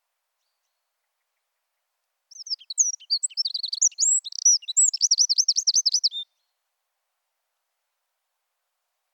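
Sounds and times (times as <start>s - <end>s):
Troglodytes troglodytes Eurasian wren song: 2.3s - 6.3s.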